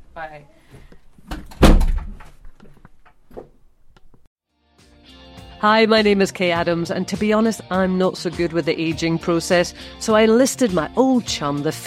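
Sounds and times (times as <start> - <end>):
speech: 0.2 - 0.9, 5.6 - 11.8
heavy front door of a house thudding shut: 1.3 - 2.4.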